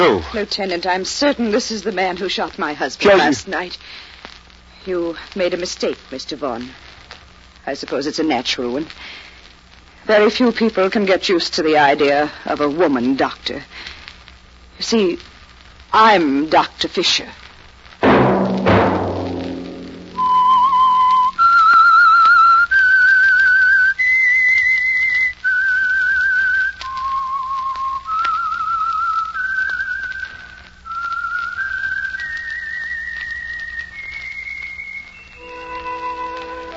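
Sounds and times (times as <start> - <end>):
speech: 0.0 - 4.1, 4.8 - 6.8, 7.6 - 9.2, 10.1 - 13.9, 14.8 - 15.3, 15.9 - 17.4
low thump: 18.0 - 20.8
whistled signature tune: 20.1 - 36.7.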